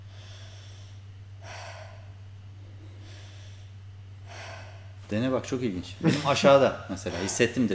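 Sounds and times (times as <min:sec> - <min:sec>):
forceful breaths from a diaphragm breathing exercise: 0:00.0 - 0:05.1, 0:07.0 - 0:07.6
steady low hum: 0:00.0 - 0:07.7
speech: 0:05.1 - 0:07.7.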